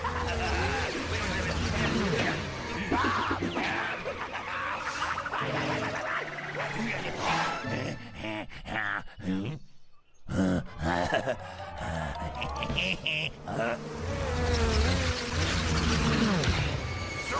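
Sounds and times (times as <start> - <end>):
laughter: 0.0 - 9.6, 10.3 - 13.9
loud bee-like buzzing: 12.5 - 17.2.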